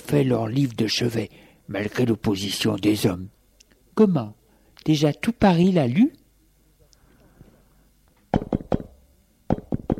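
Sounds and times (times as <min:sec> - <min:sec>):
speech: 0:00.1 - 0:03.4, 0:04.0 - 0:06.2
knocking on a wooden door: 0:08.3 - 0:08.9, 0:09.5 - 0:09.9.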